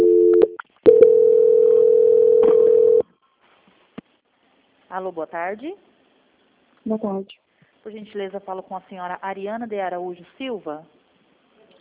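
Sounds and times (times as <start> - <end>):
telephone tone as a bank call is transferred: 0.0 - 3.0
speech: 5.0 - 5.9, 6.8 - 11.0.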